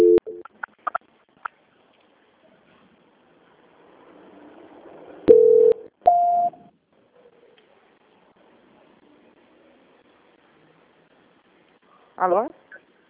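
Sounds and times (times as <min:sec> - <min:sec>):
two steady electronic telephone tones while transferring a call: 0:00.0 - 0:00.4, 0:05.3 - 0:06.6
speech: 0:12.2 - 0:12.6.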